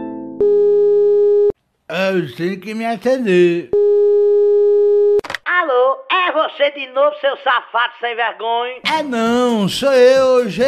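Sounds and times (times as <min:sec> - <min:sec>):
buzzy harmonic telephone line hum after a caller hangs up: 0:00.4 - 0:01.6, 0:03.8 - 0:05.2
speech: 0:02.1 - 0:03.8, 0:06.6 - 0:10.6
sharp click: 0:05.2 - 0:05.5.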